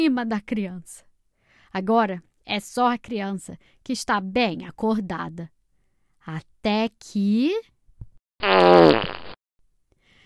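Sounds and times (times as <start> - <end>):
speech: 0.0 - 1.1, 1.7 - 5.6, 6.2 - 7.7, 8.4 - 9.2
loud drawn-out buzzy fart: 8.4 - 9.4.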